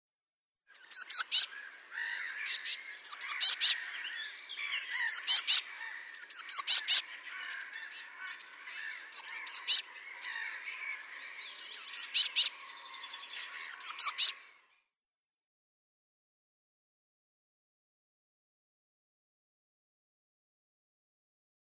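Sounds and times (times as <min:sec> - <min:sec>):
Eurasian Blue Tit nestlings calling: 0:00.8 - 0:14.4.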